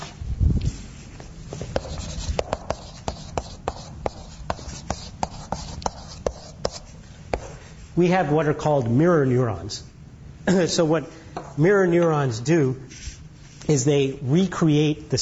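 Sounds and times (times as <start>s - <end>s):
handwriting strokes: 1.5s - 7.6s
speech: 8.0s - 13.0s, 13.7s - 15.1s.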